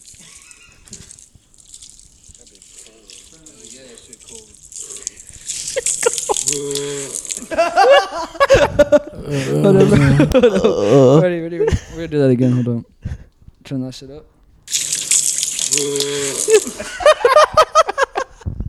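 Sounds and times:
water being sprayed on a person: 0.0 - 10.5, 14.6 - 18.3
loud voices yelping and laughing: 5.0 - 12.8, 15.8 - 18.4
speech: 7.6 - 11.2, 12.1 - 12.9, 13.7 - 14.4, 15.7 - 17.6.

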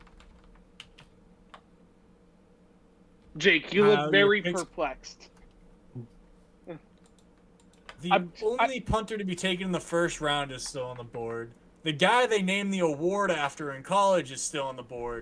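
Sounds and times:
typing on a computer keyboard: 0.0 - 1.6, 7.0 - 8.0
speech: 3.4 - 5.3, 6.7 - 6.9, 8.0 - 15.2.

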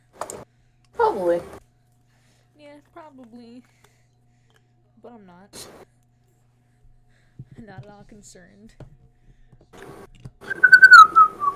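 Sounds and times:
speech: 1.2 - 1.6, 3.1 - 3.9, 5.0 - 6.0, 7.6 - 8.9
person whistling a short wavering tune: 10.5 - 11.5.

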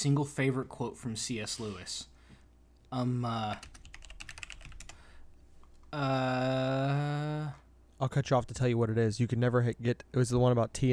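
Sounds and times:
speech: 0.0 - 2.1, 2.9 - 3.8, 5.9 - 10.9
typing on a computer keyboard: 3.5 - 5.0.

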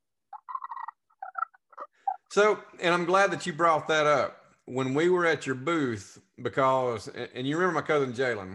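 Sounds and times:
friction turkey call worked with a sliding motion: 0.3 - 2.3
speech: 2.3 - 8.5.

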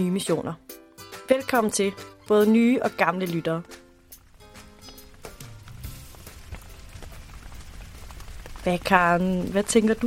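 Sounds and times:
speech: 0.0 - 0.8, 1.5 - 3.8, 8.6 - 10.0
steady rain pattering on a hard surface: 2.2 - 10.0.

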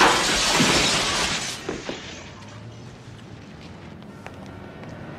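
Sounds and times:
plate glass window shattering: 0.0 - 2.4.

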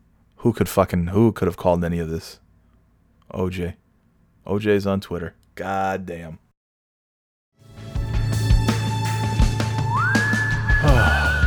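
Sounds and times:
speech: 0.4 - 2.4, 3.3 - 3.8, 4.4 - 6.4
music backing with bass and percussion: 7.8 - 11.4
whistled melody in a song: 9.1 - 11.4.

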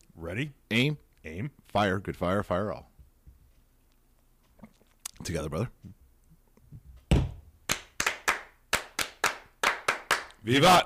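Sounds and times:
speech: 0.2 - 2.9, 5.2 - 6.0, 10.4 - 10.8
group clapping in a patterned ritual rhythm: 7.7 - 10.8.

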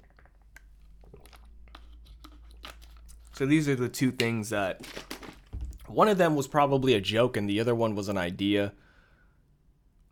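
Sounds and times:
person sipping a drink with wet mouth sounds: 0.0 - 3.4
speech: 3.4 - 5.1, 5.9 - 8.8.

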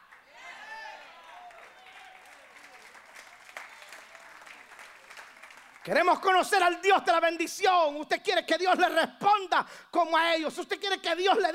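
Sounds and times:
audience applauding: 0.0 - 6.3
speech: 5.8 - 11.5.

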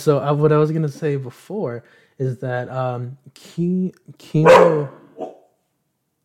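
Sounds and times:
speech: 0.0 - 5.0
dog barking: 4.4 - 5.6.

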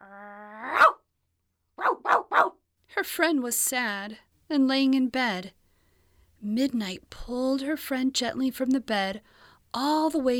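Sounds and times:
dog barking: 0.7 - 1.0, 1.8 - 2.6
speech: 3.0 - 5.6, 6.4 - 10.3.

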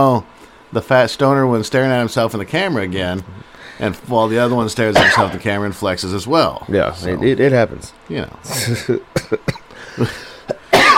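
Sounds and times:
speech: 0.0 - 10.3
short harsh coughs: 4.9 - 5.4, 8.5 - 10.9.

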